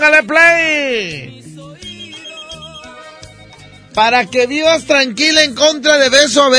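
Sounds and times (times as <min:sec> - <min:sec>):
speech: 0:00.0 - 0:01.4, 0:04.0 - 0:06.5
telephone ringing for an incoming call with a tonal electronic ring: 0:01.8 - 0:04.6.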